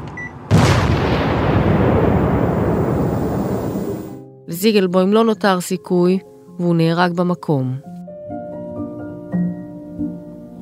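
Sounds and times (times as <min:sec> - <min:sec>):
car bomb explosion with roaring rumble: 0:00.5 - 0:04.2
speech: 0:04.5 - 0:07.9.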